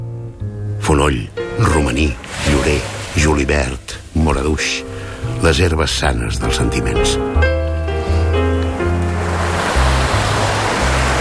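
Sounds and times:
speech: 0.9s - 7.6s
sea surf washing ashore: 1.4s - 6.5s, 8.6s - 11.1s.

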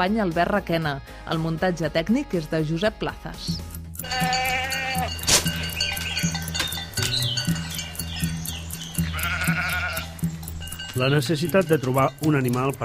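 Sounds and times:
speech: 0.0s - 4.4s, 11.0s - 12.8s
goats bleating: 4.0s - 7.9s, 8.8s - 10.9s
farmyard noise: 4.0s - 12.8s.

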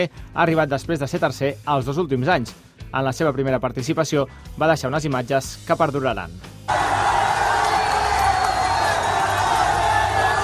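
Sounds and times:
speech: 0.0s - 7.2s
deafening crowd cheering on city streets at a cycling race finish: 6.7s - 10.4s.

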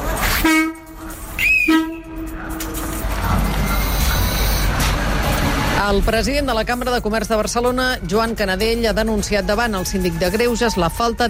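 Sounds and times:
train wheels rolling on rails: 0.0s - 11.2s
train horn blasts: 0.2s - 2.9s
speech: 5.9s - 11.2s.

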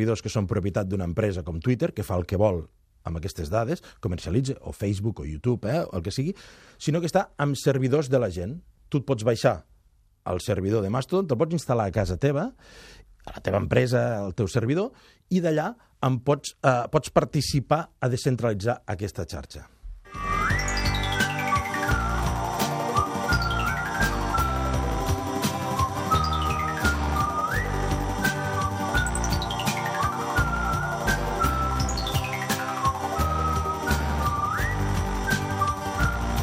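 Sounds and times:
speech: 0.0s - 20.3s
loud full instrumental backing music: 20.1s - 36.4s
whistled tune with sliding swooping notes: 20.1s - 36.4s.

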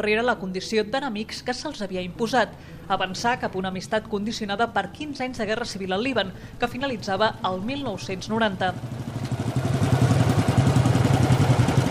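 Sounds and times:
speech: 0.0s - 9.0s
Harley-Davidson motorcycle engine running in Lebanon: 6.9s - 11.9s.

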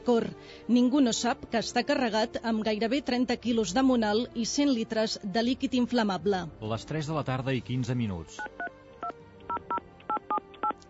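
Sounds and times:
speech: 0.0s - 8.6s
touch-tone telephone keypad dialing as a call is placed: 9.5s - 10.8s.

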